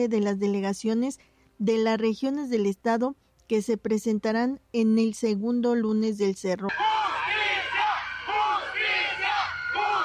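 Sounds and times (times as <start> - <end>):
speech: 0.0 - 7.0
protesters chanting in unison: 6.7 - 10.0.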